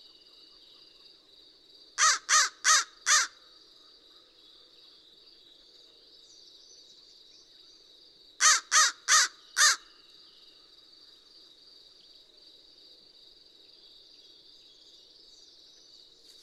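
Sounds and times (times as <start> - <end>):
American crow rasping caws: 2.0 - 3.4, 8.4 - 9.9.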